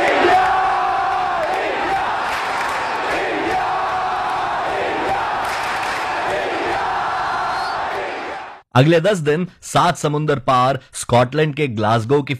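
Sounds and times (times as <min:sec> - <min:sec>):
large crowd chanting India slogans at the Commonwealth Games: 0:00.0 - 0:08.6
speech: 0:08.8 - 0:12.3.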